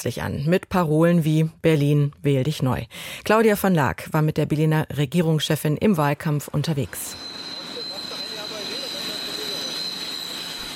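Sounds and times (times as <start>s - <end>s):
speech: 0.0s - 7.4s
S-Bahn commuter train wheels squealing overhead: 6.7s - 10.7s.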